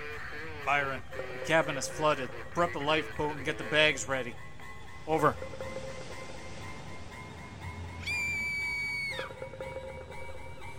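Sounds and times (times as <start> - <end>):
rushing noise: 0.0 - 10.7
speech: 0.7 - 4.5, 5.1 - 5.7
woman screaming: 8.0 - 9.3.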